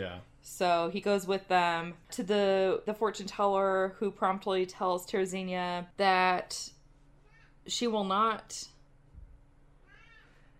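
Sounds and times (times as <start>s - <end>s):
speech: 0.0s - 6.8s, 7.7s - 8.7s
cat meowing: 9.9s - 10.4s.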